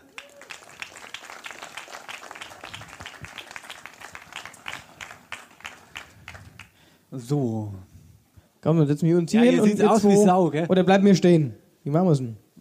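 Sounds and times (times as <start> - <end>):
audience applause: 0.0 - 6.8
speech: 7.1 - 7.9, 8.6 - 12.6.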